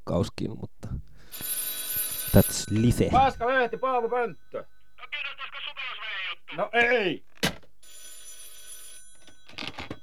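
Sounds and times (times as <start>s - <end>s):
speech: 0.1s - 1.5s, 2.3s - 4.7s, 6.6s - 7.3s
old-style telephone bell ringing: 1.2s - 6.6s, 7.8s - 10.0s.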